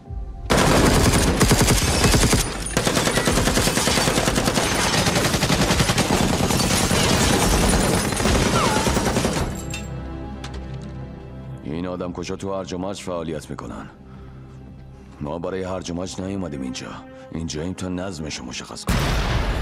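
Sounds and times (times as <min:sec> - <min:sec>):
loud automatic gunfire aimed at a building's windows: 0:00.5 - 0:09.6
speech: 0:12.0 - 0:14.0, 0:15.2 - 0:19.5.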